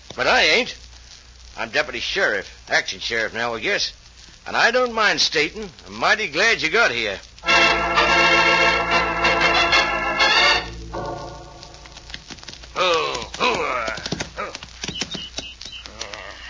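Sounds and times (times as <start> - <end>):
speech: 0.2 - 0.8, 1.6 - 7.8
sustained tonal passage: 7.4 - 12.4
horse hooves galloping: 11.7 - 16.2.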